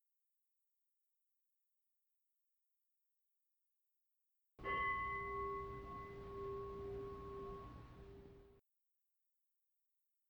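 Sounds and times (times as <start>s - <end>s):
meditation bell struck to end a meditation: 4.6s - 8.6s.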